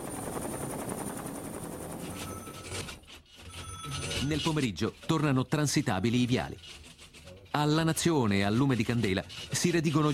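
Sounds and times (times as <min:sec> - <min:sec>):
air force helicopters taking off in Campo di Marte: 0:00.0 - 0:05.8
speech: 0:04.3 - 0:06.9, 0:07.6 - 0:10.1.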